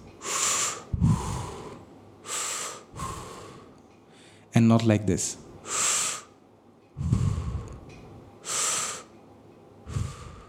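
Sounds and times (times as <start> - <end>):
deep continuous belly breathing: 0.0 - 4.5, 7.0 - 9.1, 9.8 - 10.4
speech: 4.6 - 5.5.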